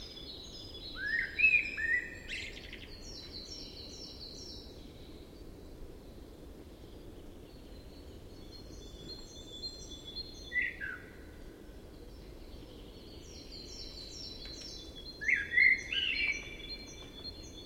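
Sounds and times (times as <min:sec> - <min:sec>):
common blackbird Turdus merula singing: 0:00.0 - 0:04.6, 0:08.4 - 0:11.2, 0:12.6 - 0:17.6.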